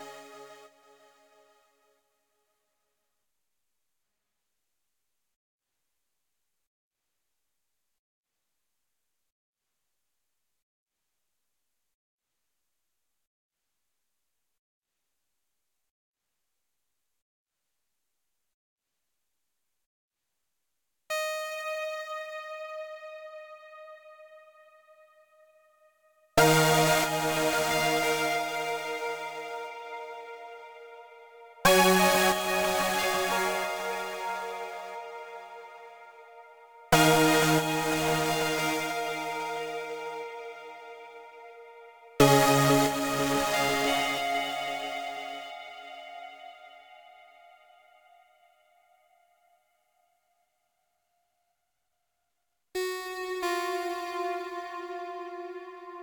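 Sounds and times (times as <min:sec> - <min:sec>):
synthwave menu music at 91 bpm: 0:21.1 - 0:25.3, 0:26.4 - 0:47.0, 0:52.8 - 0:56.0.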